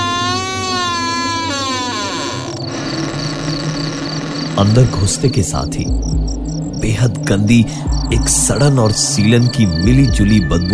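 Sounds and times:
old door forced open with eerie creak: 0.0s - 4.6s
speech: 4.6s - 10.7s
low steady rumble: 5.6s - 10.7s.

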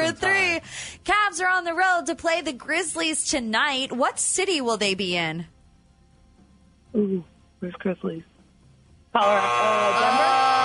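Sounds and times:
speech: 0.1s - 5.6s, 6.9s - 8.3s, 9.2s - 10.6s
loud harsh wrong-answer buzzer: 9.2s - 10.6s.

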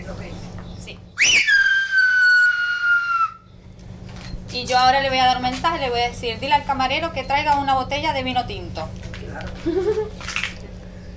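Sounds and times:
loud human whistle in a whistled language answering a call: 1.2s - 3.4s
speech: 4.8s - 10.4s.

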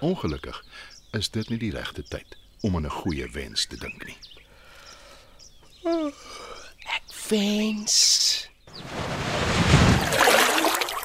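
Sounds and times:
speech: 0.0s - 4.4s, 5.8s - 6.5s, 7.3s - 9.6s
faint high chirping: 0.0s - 7.4s
loud splash into water: 8.9s - 11.0s
churning sloshing water: 9.4s - 11.0s.

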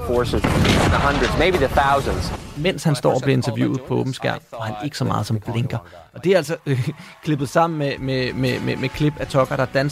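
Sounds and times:
speech: 0.1s - 9.8s
tank firing a cannon shot: 0.3s - 2.6s
laughter: 2.9s - 7.0s.

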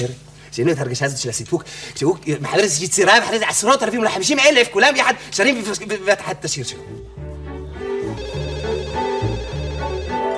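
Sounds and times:
speech: 0.0s - 7.2s
melodic electronic ringtone over a synth backing: 7.9s - 10.3s.

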